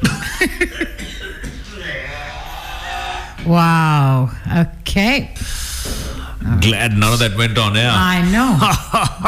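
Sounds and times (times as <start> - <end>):
person coughing: 0.0 - 1.8
speech: 3.5 - 5.6, 6.5 - 9.2.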